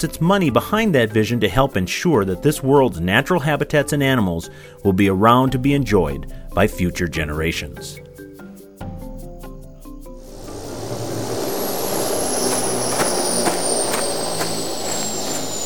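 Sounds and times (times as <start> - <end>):
speech: 0.0 - 8.0
helicopter landing: 10.4 - 15.6.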